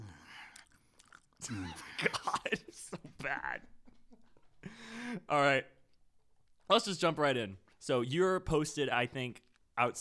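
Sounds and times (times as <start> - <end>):
wet mouth sounds: 0.3 - 1.7
crisp ASMR chewing near the microphone: 0.5 - 1.4
speech: 1.4 - 3.8, 4.8 - 5.8, 6.7 - 10.0.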